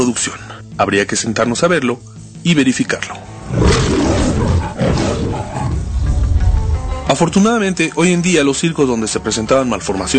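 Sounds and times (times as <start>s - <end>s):
speech: 0.0s - 4.0s, 7.1s - 10.1s
lion roaring: 3.4s - 6.5s.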